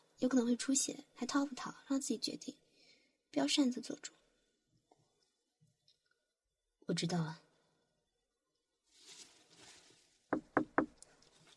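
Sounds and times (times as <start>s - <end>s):
speech: 0.2s - 2.6s, 3.3s - 4.2s, 6.9s - 7.4s
soft rustling noise: 8.8s - 10.3s, 11.0s - 11.5s
customer knocking on a door at an ear-cleaning shop: 10.3s - 11.0s.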